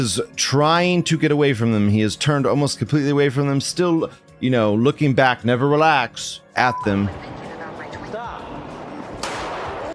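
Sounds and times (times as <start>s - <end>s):
speech: 0.0s - 7.5s
single gunshot in a played video: 9.2s - 9.9s.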